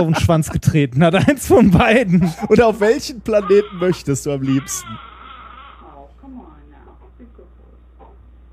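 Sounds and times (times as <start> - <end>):
laughter: 0.0 - 5.0
speech: 0.0 - 5.1
faint low hum: 0.0 - 8.5
baby crying in whimpering wails: 2.5 - 6.1.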